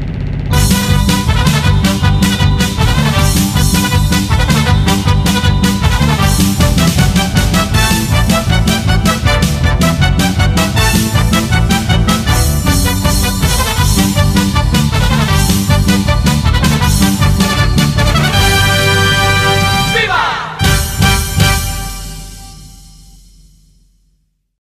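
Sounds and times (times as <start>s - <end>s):
fanfares: 0.2s - 23.1s.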